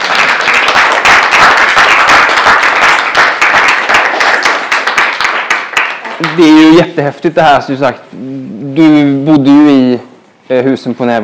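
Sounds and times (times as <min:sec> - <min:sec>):
room full of people applauding after a talk: 0:00.0 - 0:06.7
speech: 0:06.4 - 0:11.2.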